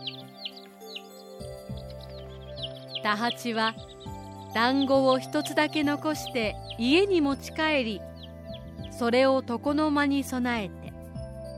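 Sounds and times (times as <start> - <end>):
small birds chirping: 0.0 - 10.9
speech: 3.0 - 8.1, 9.0 - 10.8.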